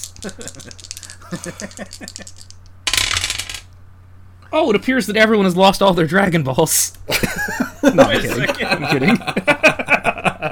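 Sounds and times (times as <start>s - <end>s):
dice clattering and tumbling across a hard surface: 0.0s - 3.7s
laughter: 0.2s - 2.3s, 7.1s - 10.5s
speech: 0.2s - 2.5s, 4.5s - 10.0s.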